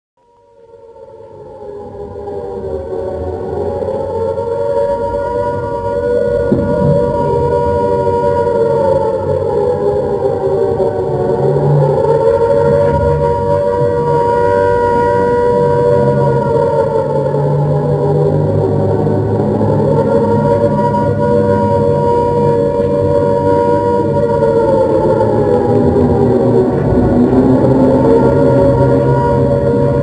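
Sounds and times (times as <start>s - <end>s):
long air raid siren: 0.2s - 30.0s.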